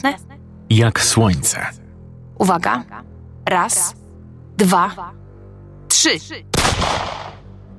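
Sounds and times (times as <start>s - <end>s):
speech: 0.0s - 1.8s, 2.4s - 4.0s, 4.6s - 5.2s, 5.9s - 7.2s
gunshot fired to shoot a padlock off a door, echoing: 6.5s - 7.5s.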